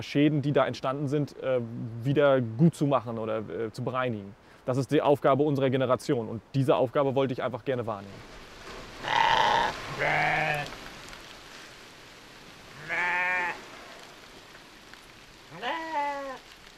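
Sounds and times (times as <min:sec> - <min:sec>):
speech: 0:00.0 - 0:08.4
steady hiss of rain: 0:00.0 - 0:16.7
sheep and lambs bleating: 0:09.0 - 0:10.7, 0:12.7 - 0:13.6, 0:15.5 - 0:16.4.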